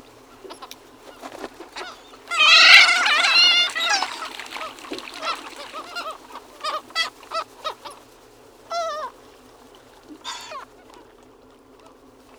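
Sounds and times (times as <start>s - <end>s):
Sooty Gull Ichthyaetus hemprichii calling: 1.8s - 7.8s.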